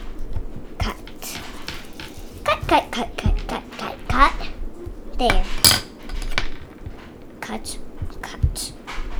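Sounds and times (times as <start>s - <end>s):
people talking: 0.0s - 9.1s
knife cutting a cake into small pieces against a hard surface: 0.2s - 7.2s.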